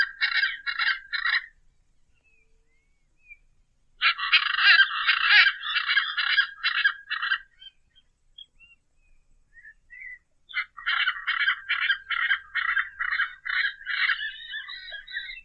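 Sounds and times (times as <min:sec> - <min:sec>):
Hyacinth Macaw uttering coarse raspy squawks: 0:00.0 - 0:01.6, 0:04.0 - 0:07.8, 0:09.9 - 0:15.4.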